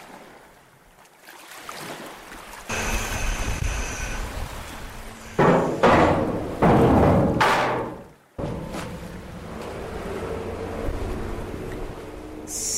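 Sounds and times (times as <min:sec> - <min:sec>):
lapping water: 0:00.0 - 0:12.7
wind: 0:00.0 - 0:12.7
ferry engine rumbling: 0:02.7 - 0:12.7
ferry bumping and scraping against the pier at Venø: 0:03.7 - 0:10.3.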